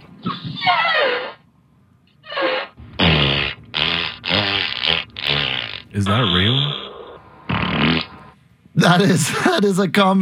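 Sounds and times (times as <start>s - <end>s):
loud broadband fart blast: 0.3s - 1.4s, 2.2s - 8.4s
speech: 6.0s - 6.8s, 8.8s - 10.2s.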